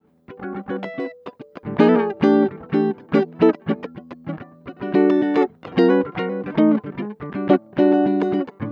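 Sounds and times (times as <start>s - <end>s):
nu jazz guitar loop in E major: 0.0s - 8.7s.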